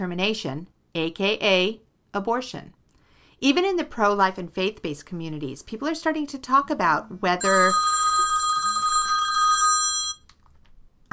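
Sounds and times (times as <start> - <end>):
speech: 0.0 - 2.8, 3.4 - 8.0
telephone ringing with bright metallic bell tone: 7.4 - 10.3.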